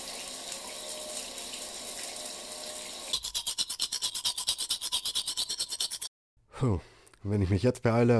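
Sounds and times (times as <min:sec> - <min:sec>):
running shower water: 0:00.0 - 0:03.1
speech: 0:06.6 - 0:08.1.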